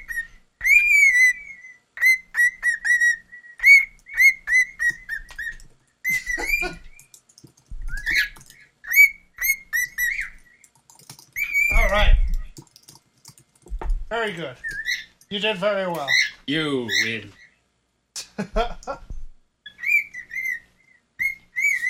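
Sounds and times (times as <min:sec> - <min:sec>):
pet bird whistling and trilling: 0:00.0 - 0:07.2, 0:07.8 - 0:12.5, 0:14.5 - 0:15.2, 0:19.6 - 0:21.8
speech: 0:14.2 - 0:14.7, 0:15.3 - 0:17.4.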